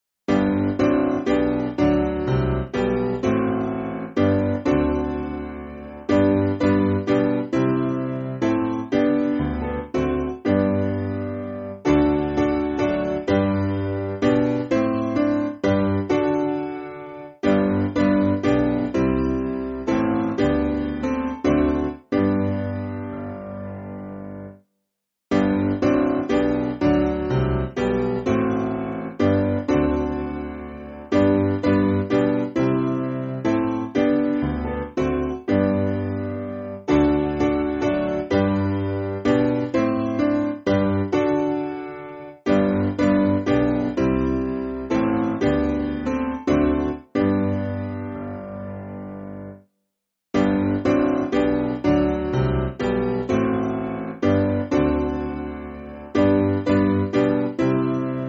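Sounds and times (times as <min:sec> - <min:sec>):
hymn on piano: 0:00.3 - 0:24.6, 0:25.3 - 0:49.7, 0:50.4 - 0:58.2.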